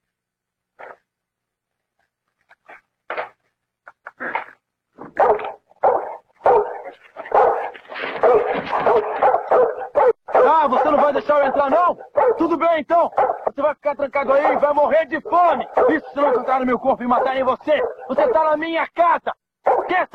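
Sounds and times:
dog barking behind a door: 0:05.1 - 0:13.6, 0:14.2 - 0:18.6, 0:19.6 - 0:20.0
speech: 0:10.7 - 0:20.1.

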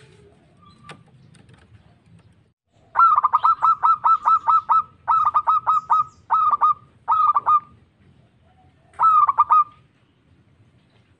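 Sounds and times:
zebra dove cooing song: 0:02.8 - 0:09.9.

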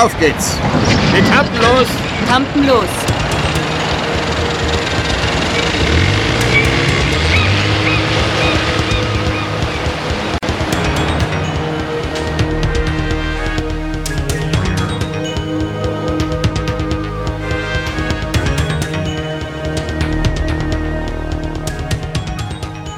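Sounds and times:
speech: 0:00.0 - 0:03.4
water wash from a motorboat at sea: 0:00.0 - 0:14.1
motorboat engine speeding out to sea: 0:03.0 - 0:22.9.

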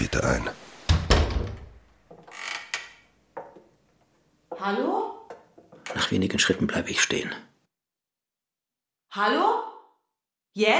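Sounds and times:
speech: 0:00.1 - 0:00.6, 0:04.6 - 0:05.1, 0:06.1 - 0:07.5, 0:09.2 - 0:09.7, 0:10.6 - 0:10.7
wooden hut door creaking and scraping: 0:00.8 - 0:03.7
wooden hut door thud: 0:00.9 - 0:02.3.

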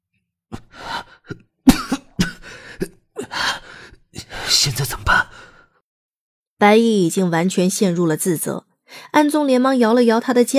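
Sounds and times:
harsh rasping coughs after gulping baijiu liquor: 0:01.7 - 0:03.0
throat clearing: 0:01.7 - 0:03.0
speech: 0:06.6 - 0:10.5.

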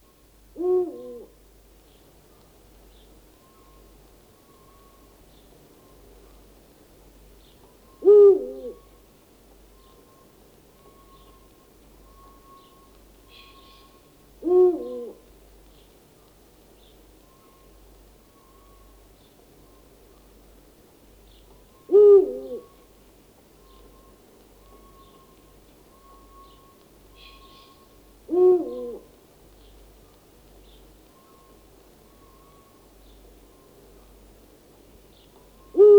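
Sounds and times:
faint steady noise: 0:00.0 - 0:35.9
owl hooting: 0:00.6 - 0:01.4, 0:08.0 - 0:08.9, 0:13.3 - 0:15.2, 0:21.8 - 0:22.8, 0:27.2 - 0:29.2, 0:35.6 - 0:35.9.

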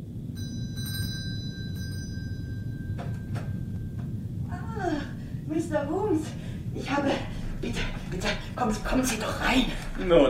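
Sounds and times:
constant low noise: 0:00.0 - 0:10.2
doorbell ringing with a sustained high tone: 0:00.3 - 0:04.4
speech: 0:05.6 - 0:10.2.

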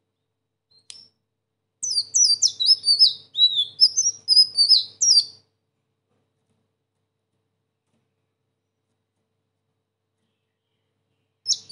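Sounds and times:
sunbird song: 0:01.8 - 0:05.4, 0:10.2 - 0:11.6.

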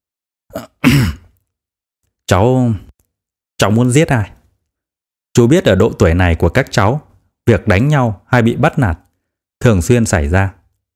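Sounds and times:
man clearing throat: 0:00.5 - 0:01.3
speech: 0:02.3 - 0:02.8, 0:03.6 - 0:04.4, 0:05.4 - 0:09.0, 0:09.6 - 0:10.6.

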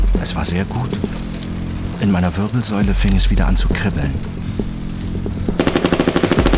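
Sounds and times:
speech: 0:00.2 - 0:01.2, 0:02.0 - 0:04.8
two machine pistols firing automatic bursts: 0:05.6 - 0:06.5.

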